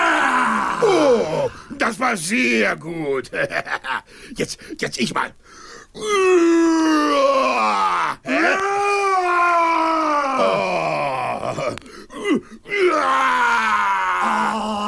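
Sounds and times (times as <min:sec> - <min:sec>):
person roaring: 0:00.0 - 0:01.8, 0:06.0 - 0:14.8
speech: 0:00.8 - 0:09.6.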